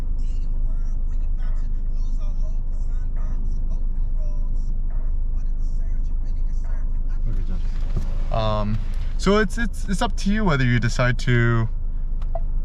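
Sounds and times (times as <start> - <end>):
bus rumbling past on a road: 0.0 - 12.6
faint voices murmuring: 7.1 - 11.4
speech: 9.2 - 11.8.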